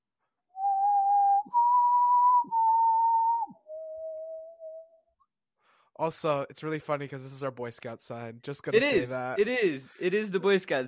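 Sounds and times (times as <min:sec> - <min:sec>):
person whistling a short tune: 0:00.6 - 0:05.1
breaths between whistled notes: 0:05.6 - 0:06.0
speech: 0:06.0 - 0:10.8.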